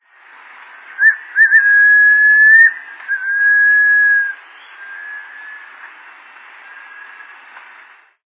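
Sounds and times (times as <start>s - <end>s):
striolated puffbird calling: 1.0s - 5.9s.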